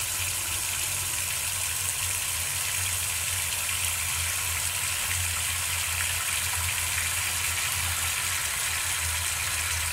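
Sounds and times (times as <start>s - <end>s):
running water: 0.0s - 9.9s.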